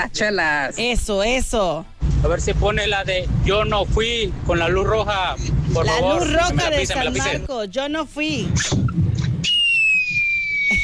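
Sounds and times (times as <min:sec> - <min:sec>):
speech: 0:00.0 - 0:08.9
whistling firework rocket at a birthday celebration: 0:08.6 - 0:10.8.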